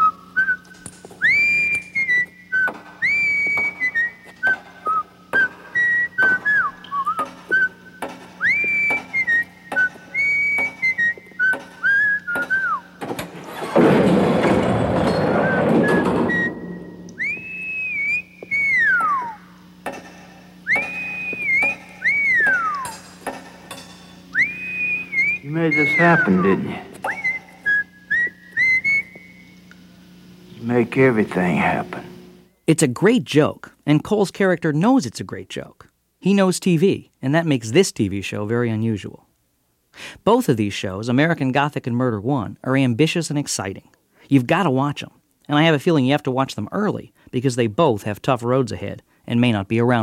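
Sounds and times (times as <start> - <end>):
man whistling a slow lilting tune while walking: 0.0 - 12.9, 15.4 - 19.6, 20.6 - 23.0, 24.3 - 29.5
faint steady hum: 0.0 - 50.0
loud rushing clattering noise: 13.2 - 16.9
speech: 26.0 - 26.8, 30.9 - 32.0, 32.7 - 39.3, 40.0 - 50.0.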